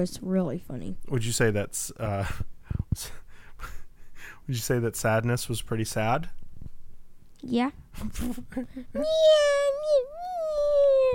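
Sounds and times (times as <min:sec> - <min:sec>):
speech: 0:00.0 - 0:03.8, 0:04.5 - 0:06.4, 0:07.4 - 0:10.8
child pretend crying like a meowing cat: 0:09.0 - 0:11.1.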